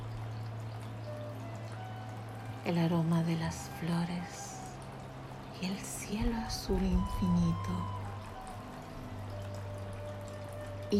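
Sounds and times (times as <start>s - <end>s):
stream water trickling: 0.0s - 10.9s
speech: 2.6s - 4.5s, 5.6s - 8.0s.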